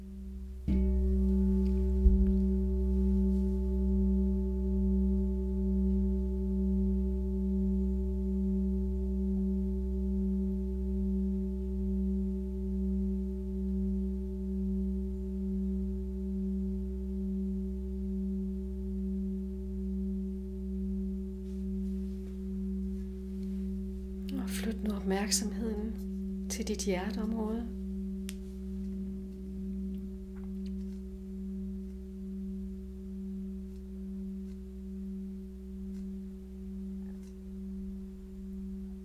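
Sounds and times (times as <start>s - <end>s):
singing bowl ringing: 0.6s - 39.0s
speech: 25.1s - 26.0s, 26.6s - 27.8s.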